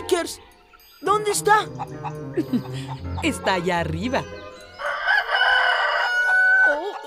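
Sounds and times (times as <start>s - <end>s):
speech: 0.1s - 0.5s, 1.1s - 4.4s
rooster crowing: 4.6s - 6.8s.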